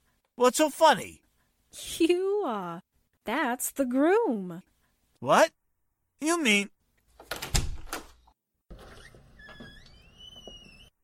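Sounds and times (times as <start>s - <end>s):
speech: 0.4s - 5.6s, 6.2s - 7.4s
door opened with loud clunks and rattles: 7.2s - 11.0s.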